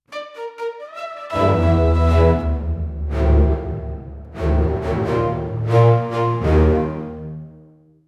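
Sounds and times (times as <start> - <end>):
cinematic orchestral thriller music: 0.1 - 7.8.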